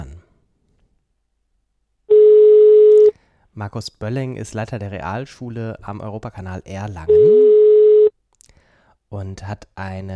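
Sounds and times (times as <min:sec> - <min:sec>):
telephone line tone as a call is placed: 0:02.1 - 0:03.1, 0:07.1 - 0:08.1
speech: 0:03.6 - 0:07.5, 0:09.1 - 0:10.1.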